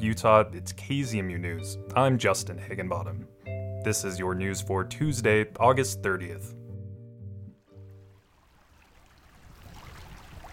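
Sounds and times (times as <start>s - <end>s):
speech: 0.0s - 6.6s
sustained musical tone: 0.0s - 8.2s
creek water trickling slowly: 7.6s - 10.5s.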